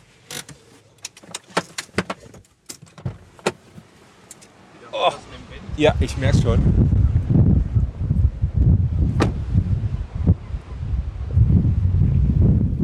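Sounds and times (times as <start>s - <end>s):
speech: 5.0s - 6.9s
strong wind buffeting windscreened microphone at Africa's southwesternmost point: 5.6s - 12.8s.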